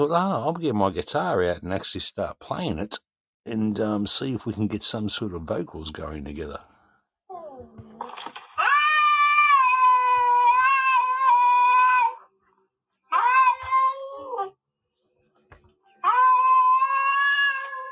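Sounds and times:
speech: 0.0s - 6.7s
pet cat caterwauling and meowing: 8.6s - 12.1s, 16.0s - 17.8s.

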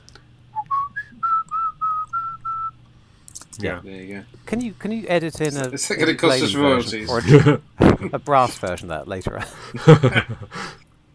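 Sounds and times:
person whistling a short bouncy theme tune: 0.6s - 2.8s
speech: 3.6s - 10.8s
laughter: 7.0s - 8.6s, 9.4s - 10.6s.

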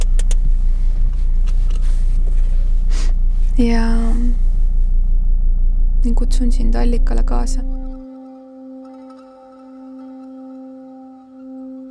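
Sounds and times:
brief whooshing and rustling noises: 0.0s - 5.3s
car engine idling while being parked: 0.0s - 8.0s
speech: 3.6s - 4.2s, 6.2s - 7.8s.

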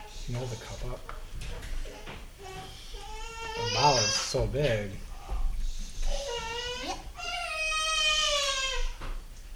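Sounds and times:
speech: 0.3s - 2.1s, 3.7s - 5.1s
fussy hungry baby crying: 2.4s - 4.4s, 6.0s - 9.0s.

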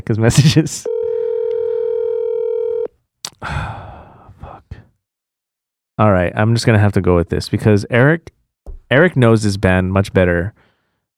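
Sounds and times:
speech: 0.0s - 0.9s, 6.0s - 11.1s
telephone dial tone during a phone call: 0.9s - 2.9s
breathy exhale: 3.4s - 4.6s.

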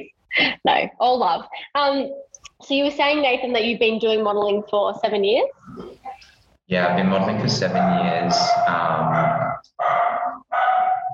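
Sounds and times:
speech: 0.0s - 10.0s
dog barking inside an office: 7.7s - 11.1s.

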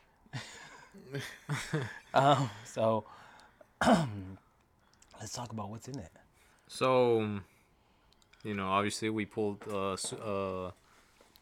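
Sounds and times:
speech: 1.0s - 4.4s, 5.2s - 7.5s, 8.4s - 10.8s
person coughing after smoking: 1.1s - 2.6s, 3.8s - 4.4s
person clearing throat after smoking: 2.1s - 2.6s, 3.8s - 4.4s.

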